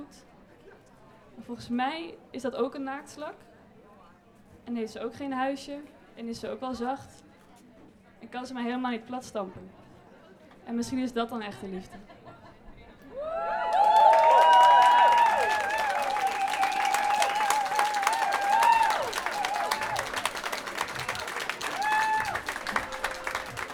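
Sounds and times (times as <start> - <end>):
speech: 1.4 - 3.5, 4.7 - 7.3, 8.2 - 9.8, 10.6 - 12.2
audience at a Pride walk gathering whooping and cheering: 13.1 - 23.7
audience at a Pride walk gathering clapping: 13.4 - 23.7.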